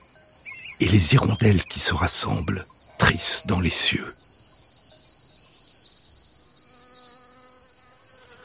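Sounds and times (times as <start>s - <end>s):
high chirring of insects: 0.0s - 8.4s
speech: 0.8s - 4.2s
bee buzzing: 6.6s - 8.4s.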